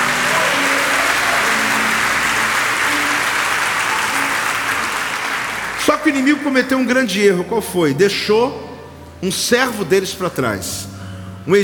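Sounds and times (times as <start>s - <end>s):
large crowd applause: 0.0s - 6.5s
speech: 6.0s - 11.6s.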